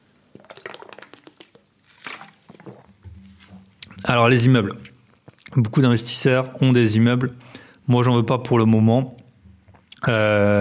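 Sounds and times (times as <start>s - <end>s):
person sipping water: 0.3s - 4.1s, 4.7s - 5.6s, 9.6s - 10.0s
water being poured: 0.4s - 4.1s
speech: 4.0s - 4.9s, 5.6s - 9.2s, 10.0s - 10.5s.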